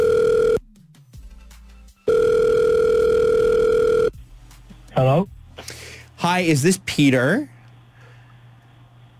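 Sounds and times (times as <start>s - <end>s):
phone line electronic ring tones heard through the handset: 0.0s - 0.6s, 2.1s - 4.1s
speech: 6.4s - 7.5s.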